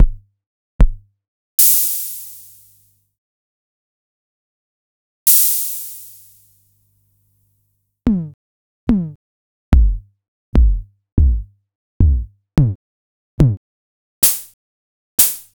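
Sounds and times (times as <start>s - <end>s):
Mattel Electronics Synsonics electronic drum: 8.1s - 9.2s, 9.8s - 10.0s, 10.6s - 12.8s, 13.4s - 13.6s.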